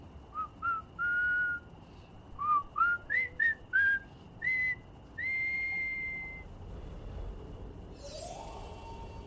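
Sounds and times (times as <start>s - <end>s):
low rumble: 0.0s - 9.2s
clear melodic whistle playing a tune: 0.3s - 1.7s, 2.4s - 6.5s.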